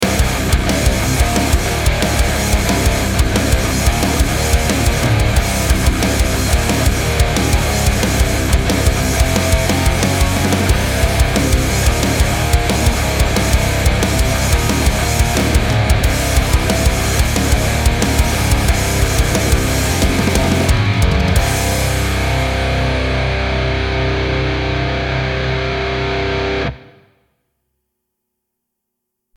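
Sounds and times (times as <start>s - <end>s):
aggressive metal music: 0.0s - 26.8s.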